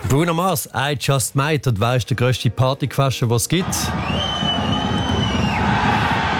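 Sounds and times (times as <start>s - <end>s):
speech: 0.1s - 4.5s
large crowd cheering and roaring: 3.6s - 6.3s.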